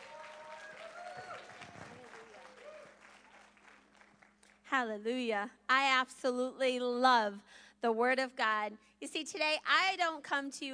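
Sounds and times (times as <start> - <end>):
scattered voices and cheers: 0.0 - 3.1
audience applauding with dense clapping: 0.0 - 4.6
speech: 4.7 - 10.7.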